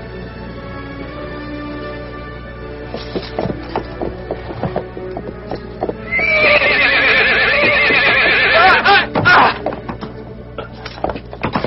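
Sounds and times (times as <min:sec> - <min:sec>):
horse hooves stamping: 0:02.5 - 0:11.6
horse whinnying: 0:06.0 - 0:09.6.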